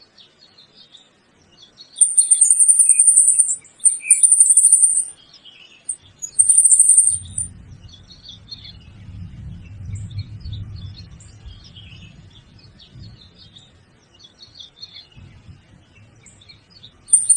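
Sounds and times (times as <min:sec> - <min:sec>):
faint bird twittering: 0:02.0 - 0:05.1, 0:05.8 - 0:08.9, 0:14.2 - 0:17.3
low rumbling noise: 0:07.3 - 0:14.0, 0:15.1 - 0:17.1.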